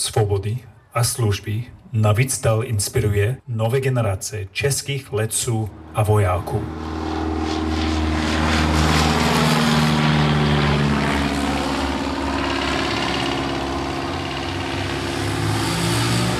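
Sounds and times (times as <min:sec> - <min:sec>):
speech: 0:00.0 - 0:07.7
World War II propeller plane flying overhead: 0:05.2 - 0:16.3.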